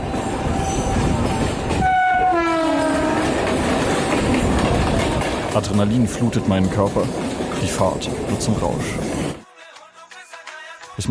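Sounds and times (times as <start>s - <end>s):
commuter train rushing along the tracks at night: 0.0s - 9.4s
descending horn-like tone: 1.8s - 3.4s
speech: 5.6s - 9.2s.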